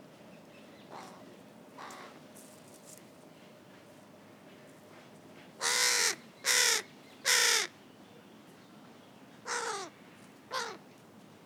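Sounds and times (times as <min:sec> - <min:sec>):
carrion crow Corvus corone cawing: 0:05.6 - 0:07.7, 0:09.5 - 0:09.9, 0:10.5 - 0:10.8.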